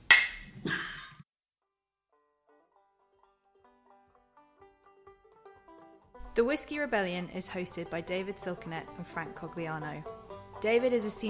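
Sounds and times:
glasses clinking in a toast: 0:00.0 - 0:01.2
soft gentle melody: 0:06.1 - 0:11.2
speech: 0:06.4 - 0:11.2.

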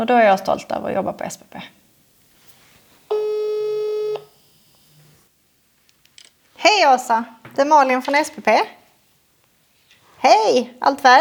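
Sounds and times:
speech: 0:00.0 - 0:01.8, 0:06.6 - 0:08.8, 0:10.2 - 0:11.1
faint noise: 0:00.0 - 0:11.1
telephone electronic beep as a call is placed: 0:03.1 - 0:04.3.

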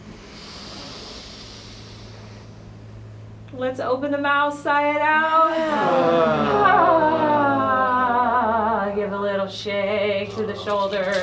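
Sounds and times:
deep inhale during a guided breathing exercise: 0:00.0 - 0:02.9
speech: 0:03.5 - 0:07.3, 0:09.0 - 0:11.2
laughter: 0:05.5 - 0:08.4.

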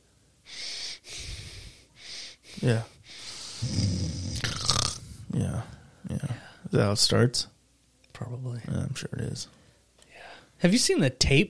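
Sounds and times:
voice imitating heavy mouth breathing during sleep with snore-like rattles: 0:00.5 - 0:05.3
speech: 0:02.6 - 0:02.9, 0:06.7 - 0:07.5, 0:08.2 - 0:09.6, 0:10.6 - 0:11.4.

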